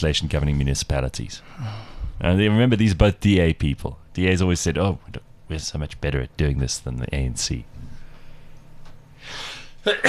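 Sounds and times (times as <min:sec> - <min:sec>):
speech: 0:00.0 - 0:07.9, 0:09.2 - 0:10.0
faint hum: 0:00.0 - 0:10.0
breathy intake of air: 0:01.4 - 0:02.2, 0:09.2 - 0:09.8
sneeze: 0:09.9 - 0:10.0.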